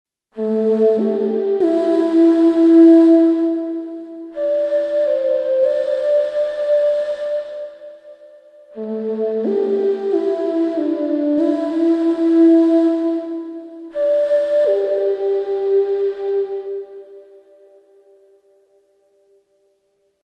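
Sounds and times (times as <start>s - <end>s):
limbe flute: 0.4s - 18.9s.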